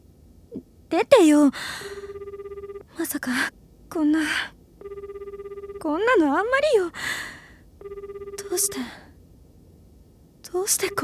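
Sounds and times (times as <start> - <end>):
speech: 0.5 - 1.9, 3.0 - 4.6, 5.8 - 7.4, 8.5 - 9.0, 10.5 - 11.0
telephone ringing with electronic trill: 1.5 - 9.1, 10.5 - 11.0.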